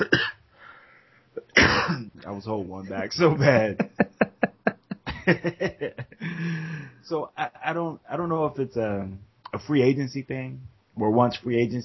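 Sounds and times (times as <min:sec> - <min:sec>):
sharp loud cough: 0:00.0 - 0:00.4, 0:01.4 - 0:02.1
speech: 0:02.2 - 0:04.1, 0:05.3 - 0:11.8
laughter: 0:02.9 - 0:06.9.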